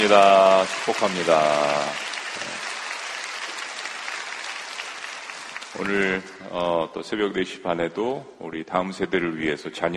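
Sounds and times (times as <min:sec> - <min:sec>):
speech: 0:00.0 - 0:02.5, 0:05.8 - 0:09.9
large audience applauding: 0:00.0 - 0:06.9.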